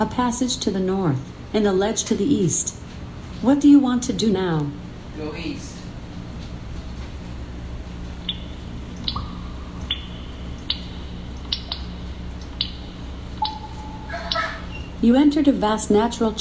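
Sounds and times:
speech: 0:00.0 - 0:02.8, 0:03.4 - 0:05.7, 0:15.0 - 0:16.4
low constant rumble: 0:00.0 - 0:16.4
water dripping from a root: 0:08.2 - 0:14.7.

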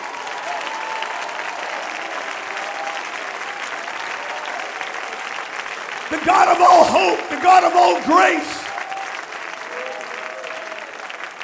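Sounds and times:
large crowd clapping: 0:00.0 - 0:11.4
speech: 0:06.1 - 0:08.6.

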